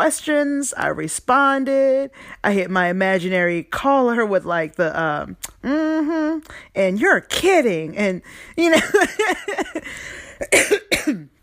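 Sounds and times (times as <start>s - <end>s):
speech: 0.0s - 11.4s
unwell person coughing: 9.1s - 11.3s.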